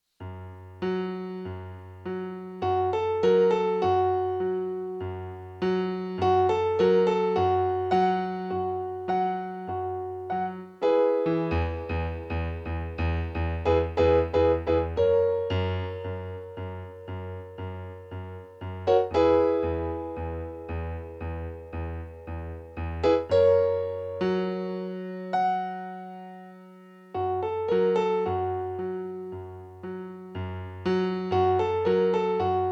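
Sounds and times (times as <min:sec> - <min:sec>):
piano prelude: 0:00.2 - 0:32.7.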